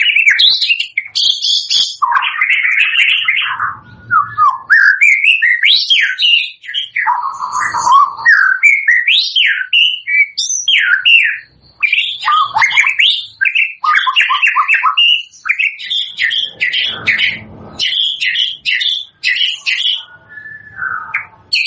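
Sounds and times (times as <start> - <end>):
white-rumped shama lure song of whistled and slurred notes for bird trapping: 0.0 - 21.6
low rumbles: 16.2 - 18.6.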